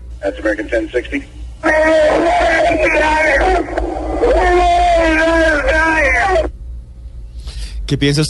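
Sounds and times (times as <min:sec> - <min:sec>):
steady low engine-like hum of an aircraft cockpit: 0:00.0 - 0:08.2
speech: 0:00.2 - 0:06.5, 0:07.9 - 0:08.2
man's anguished sustained howling scream: 0:01.6 - 0:06.5.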